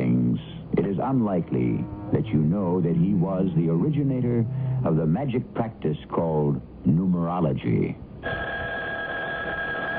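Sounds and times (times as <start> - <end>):
speech: 1.0 - 8.4
telephone ringing with a thin electronic tone: 8.2 - 9.9.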